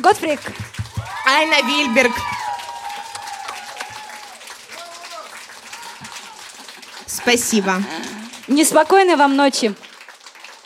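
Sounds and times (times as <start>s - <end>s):
speech: 0.0s - 2.4s, 7.2s - 9.9s
audience applause of many hands clapping: 0.0s - 10.6s
faint cheering: 0.9s - 6.9s.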